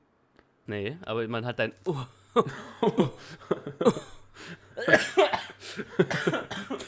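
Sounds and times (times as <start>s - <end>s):
speech: 0.7s - 4.1s, 4.8s - 6.8s
laughter: 1.9s - 6.8s
person coughing after choking: 2.4s - 6.8s.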